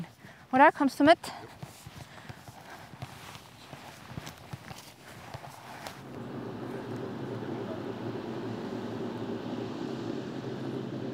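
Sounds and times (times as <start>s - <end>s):
speech: 0.5s - 1.6s
crunching footsteps on a hard path: 1.3s - 6.2s
tractor engine rumbling: 5.9s - 11.1s.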